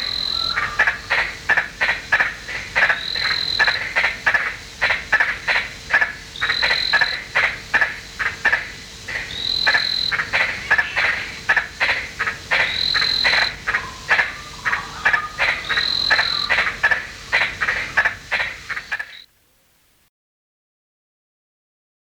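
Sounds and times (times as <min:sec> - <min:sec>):
white-lipped tree frog Litoria infrafrenata giving rasping notes: 0:00.0 - 0:08.7, 0:09.3 - 0:19.3
thin high whine: 0:00.0 - 0:20.1.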